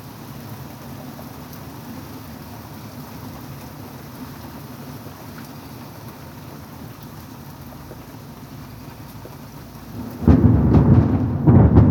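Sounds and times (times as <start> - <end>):
storm rumbling: 9.9 - 11.8
deep blast of wind or thunder: 10.0 - 11.8.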